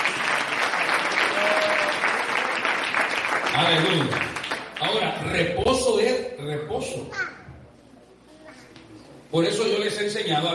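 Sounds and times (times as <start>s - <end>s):
church congregation applauding: 0.0s - 5.4s
speech: 3.6s - 7.3s, 9.3s - 10.5s.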